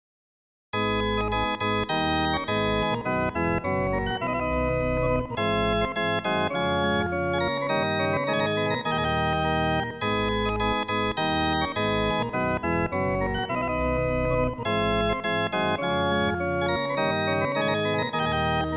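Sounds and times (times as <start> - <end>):
organ pipe: 0.8 - 18.7.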